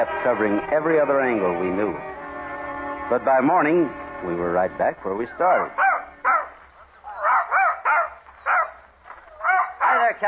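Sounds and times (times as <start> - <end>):
speech: 0.0 - 2.2, 3.1 - 5.8
male dog barking: 5.7 - 10.2.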